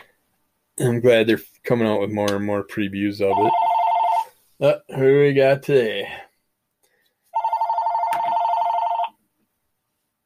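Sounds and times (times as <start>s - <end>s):
speech: 0.8s - 3.7s, 4.6s - 6.2s
telephone bell ringing with a metallic trill: 3.3s - 4.3s, 7.4s - 9.2s.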